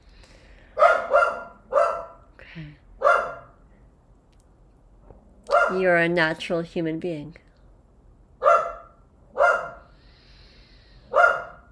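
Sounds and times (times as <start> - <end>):
dog barking: 0.8 - 2.2, 3.0 - 3.6, 5.5 - 5.8, 8.4 - 9.9, 11.1 - 11.7
speech: 2.6 - 2.8, 5.7 - 7.4.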